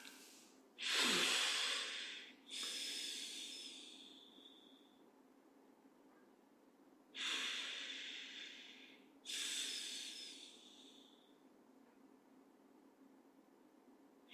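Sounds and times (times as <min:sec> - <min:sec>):
slow deep breathing: 0:00.0 - 0:05.1, 0:07.2 - 0:11.4
quiet hiss: 0:00.0 - 0:12.0.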